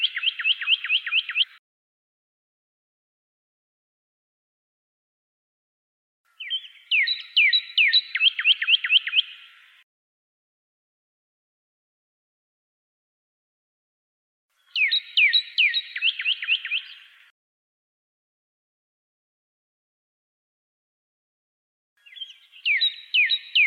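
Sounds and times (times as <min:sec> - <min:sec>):
pyrrhuloxia singing down-slurred whistled notes: 0:00.0 - 0:01.6, 0:06.3 - 0:09.8, 0:14.6 - 0:17.3, 0:22.0 - 0:23.6.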